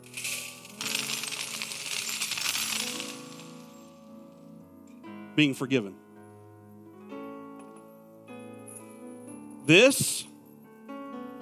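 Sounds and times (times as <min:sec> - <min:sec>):
metal chains dropping and rattling: 0:00.0 - 0:04.5
speech: 0:05.4 - 0:06.1, 0:09.7 - 0:10.3.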